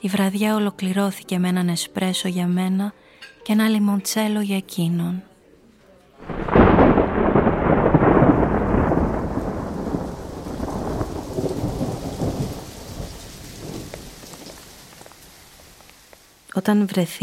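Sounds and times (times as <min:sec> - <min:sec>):
speech: 0:00.0 - 0:05.3, 0:16.6 - 0:17.2
deep rolling thunderclap: 0:06.2 - 0:15.8
heavy rainstorm rain pouring: 0:06.2 - 0:16.5.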